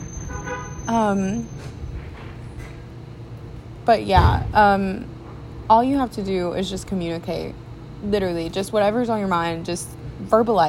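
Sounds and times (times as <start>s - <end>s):
car horn honking: 0.0s - 0.9s
rumble of passing road traffic: 0.0s - 10.6s
speech: 0.9s - 1.8s, 3.9s - 10.6s.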